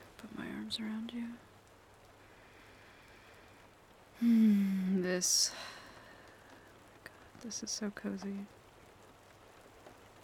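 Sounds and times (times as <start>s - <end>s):
soft steady rain: 0.0s - 10.2s
speech: 0.7s - 1.5s, 4.2s - 5.7s, 7.4s - 8.6s.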